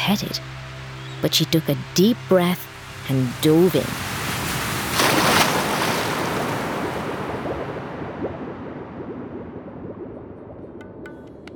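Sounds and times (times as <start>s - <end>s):
windy hiss: 0.0s - 9.0s
speech: 0.1s - 4.1s
sea water in a channel lapping against a dock at night: 2.8s - 8.3s.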